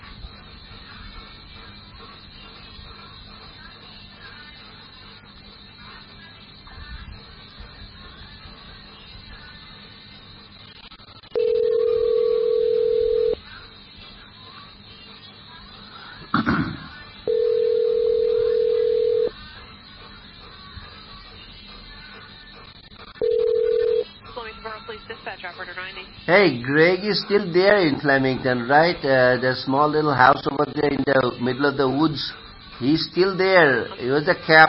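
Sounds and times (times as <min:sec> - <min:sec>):
low hissy telephone line background: 0:00.0 - 0:34.6
steady electronic telephone tone beeps: 0:11.4 - 0:13.4, 0:17.3 - 0:19.3, 0:23.2 - 0:24.1
speech: 0:26.3 - 0:34.6.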